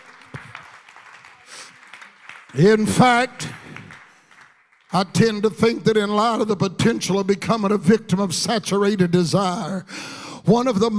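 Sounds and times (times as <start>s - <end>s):
church audience clapping hands: 0.0s - 6.0s
speech: 2.5s - 3.6s, 4.9s - 10.9s.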